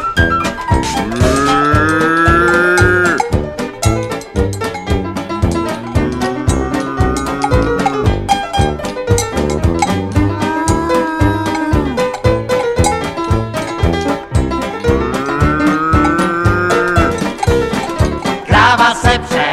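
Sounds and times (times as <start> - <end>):
busy clattering background: 0.2 - 19.4
overfed cow mooing: 0.9 - 3.4, 4.6 - 8.4, 9.8 - 12.2, 14.8 - 18.3.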